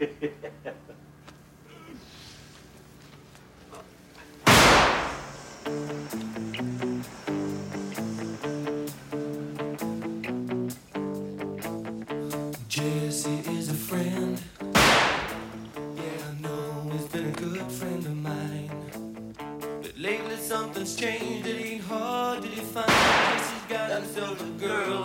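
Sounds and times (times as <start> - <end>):
laughter: 0.0 - 1.1
single sharp firecracker bang from a film scene: 4.4 - 8.4, 14.8 - 15.6, 22.9 - 23.8
pop song with steady guitar chords: 5.3 - 25.0.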